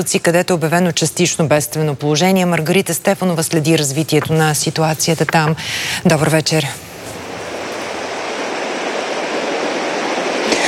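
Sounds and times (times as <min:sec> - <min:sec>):
speech: 0:00.0 - 0:06.9
rushing swollen river water: 0:04.1 - 0:10.6.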